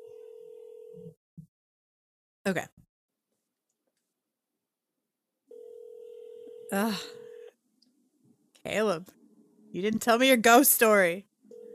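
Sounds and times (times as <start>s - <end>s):
electronic ringback tone of an outgoing phone call on speaker: 0.0s - 1.2s, 5.5s - 7.5s, 11.5s - 11.7s
speech: 2.4s - 2.8s, 6.7s - 7.2s, 8.6s - 11.3s.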